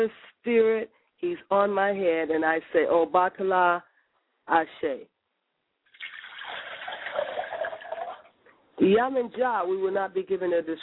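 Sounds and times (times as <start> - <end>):
speech: 0.0 - 3.9, 4.5 - 5.1, 8.8 - 10.8
liquid poured out as a libation: 5.9 - 8.4.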